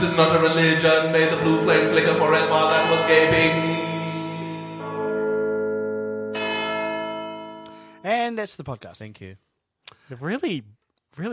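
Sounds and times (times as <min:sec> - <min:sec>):
speech: 0:00.0 - 0:04.0, 0:08.3 - 0:11.3
church bells ringing: 0:00.0 - 0:08.1.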